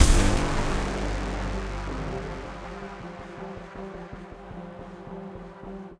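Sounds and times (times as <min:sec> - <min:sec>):
video game battle music at 160 BPM: 0:00.0 - 0:02.7.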